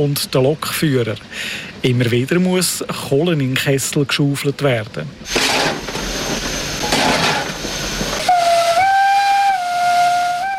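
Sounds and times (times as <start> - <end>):
speech: 0.0 - 5.8
coal-fired steam locomotive hissing on a steam railway: 5.3 - 10.5
steam locomotive whistle blast: 8.2 - 10.5.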